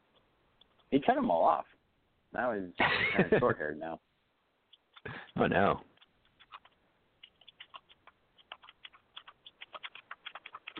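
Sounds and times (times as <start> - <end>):
speech: 0.9 - 4.1, 5.0 - 5.9
typing on a computer keyboard: 4.7 - 10.7.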